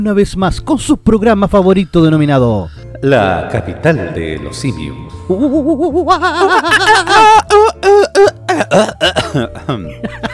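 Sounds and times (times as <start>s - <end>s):
speech: 0.0s - 10.3s
wavering laugh-like vocal sounds: 5.3s - 10.3s
harsh barking coughs: 8.5s - 9.7s.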